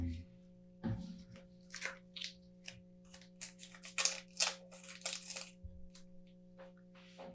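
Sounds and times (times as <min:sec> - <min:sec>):
steady low hum: 0:00.0 - 0:07.3
small scissors snipping into a milk chocolate wrapper: 0:01.7 - 0:05.6.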